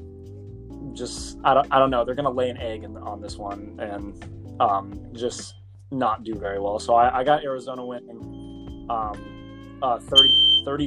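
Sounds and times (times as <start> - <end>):
speech: 1.0 - 10.8
fire alarm high steady electronic tone: 10.2 - 10.7.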